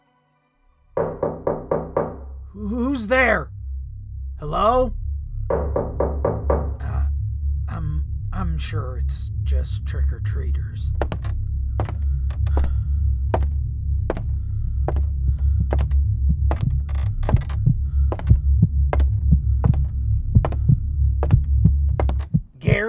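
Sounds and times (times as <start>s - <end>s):
heartbeat sound effect from a soundboard: 1.0s - 3.4s, 4.4s - 8.6s, 10.8s - 22.8s
loud low droning hum: 1.0s - 22.6s
speech: 2.6s - 3.5s, 4.4s - 5.6s, 8.6s - 11.3s.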